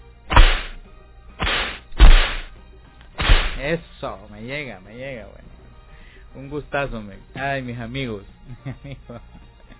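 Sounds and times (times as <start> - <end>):
whip cracks with swishing tail: 0.3 - 0.8, 1.4 - 2.5, 3.2 - 3.7
speech: 3.6 - 5.5, 6.3 - 9.4.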